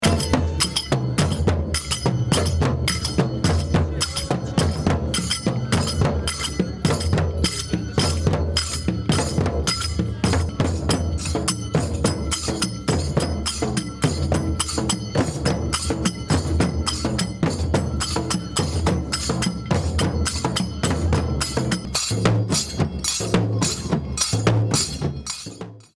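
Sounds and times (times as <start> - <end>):
vocals: 0.0 - 1.0, 3.8 - 5.0
tabl drum: 0.0 - 25.9.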